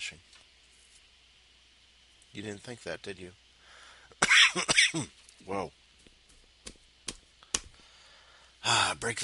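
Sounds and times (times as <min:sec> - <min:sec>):
speech: 0:02.4 - 0:03.4, 0:04.5 - 0:05.8, 0:08.6 - 0:09.2
person coughing harshly with throaty hacks: 0:04.2 - 0:05.1.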